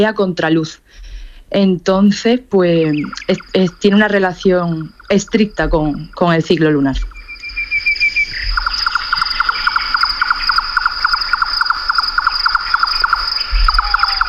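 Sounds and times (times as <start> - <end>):
speech: 0.0 - 7.2
nightjar calling: 2.7 - 14.2
constant high-pitched insect drone: 2.8 - 14.2.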